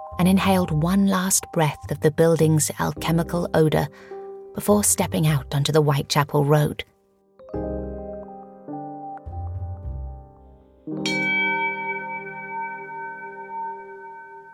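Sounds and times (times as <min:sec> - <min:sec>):
speech: 0:00.2 - 0:06.9
bell strikes at different pitches: 0:11.0 - 0:14.5.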